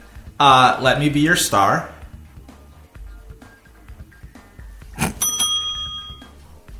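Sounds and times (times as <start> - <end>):
speech: 0.4 - 2.0
bell-like correct-answer chime in a quiz game: 5.2 - 6.4.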